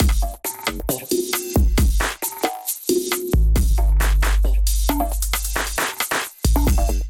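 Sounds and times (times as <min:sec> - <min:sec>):
glitch drum kit groove: 0:00.0 - 0:07.0.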